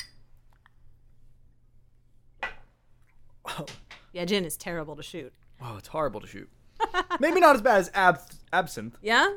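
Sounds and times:
shot glasses clinking together in a toast: 0.0 - 0.3
quiet hum: 0.0 - 9.3
speech: 3.6 - 9.3.

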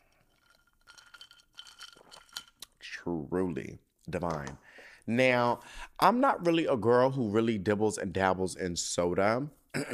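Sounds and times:
ice cubes clinking against a drinking glass: 0.3 - 2.6
speech: 3.0 - 9.9.

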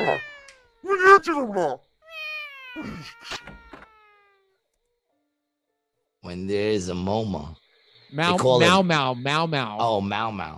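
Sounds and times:
several cats yowling and meowing in agitated caterwauling: 0.0 - 0.8, 2.0 - 4.5
speech: 0.1 - 1.9, 2.8 - 3.5, 6.2 - 10.5.

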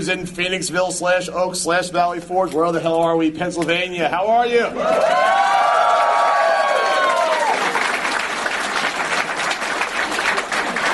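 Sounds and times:
speech: 0.0 - 5.6
live crowd whoops and cheers: 4.7 - 7.9
live audience clapping: 4.8 - 10.9.

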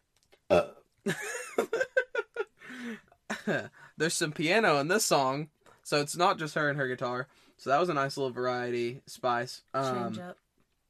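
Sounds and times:
person burping: 0.5 - 0.8
laughter: 1.1 - 3.7
speech: 3.5 - 10.4.

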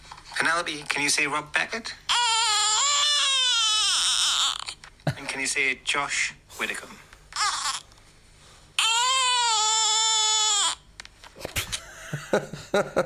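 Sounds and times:
speech: 0.4 - 2.0, 5.4 - 7.1, 12.3 - 13.0
adult speaking: 0.4 - 2.1, 5.1 - 7.1
baby girl making long creaky squeals: 2.1 - 4.8, 7.4 - 7.9, 8.8 - 10.9.

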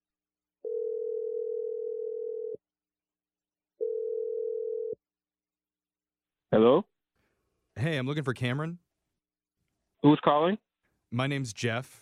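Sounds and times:
long steady telephone ringing tones: 0.7 - 2.6, 3.8 - 5.0
speech: 6.6 - 6.9, 7.8 - 8.8, 10.1 - 11.9.

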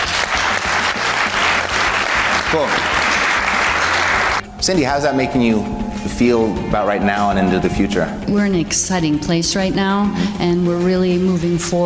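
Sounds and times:
audience applause: 0.0 - 4.4
speech: 2.5 - 2.9, 4.6 - 11.8.

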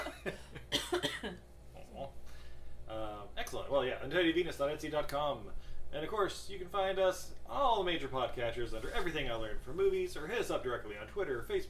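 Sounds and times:
coughs: 0.0 - 1.4
speech: 0.2 - 0.5, 3.7 - 11.6
throaty sounds as someone tries to hold back coughs: 1.7 - 2.4.

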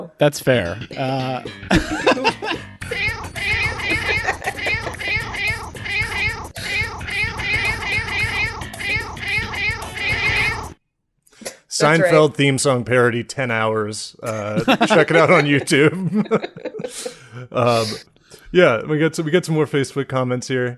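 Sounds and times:
speech: 0.0 - 4.2, 11.8 - 20.7
laughter: 1.7 - 2.6, 3.6 - 5.4, 14.2 - 18.0
cat meows strung together in a rhythmic tune-like pattern: 3.0 - 10.7.

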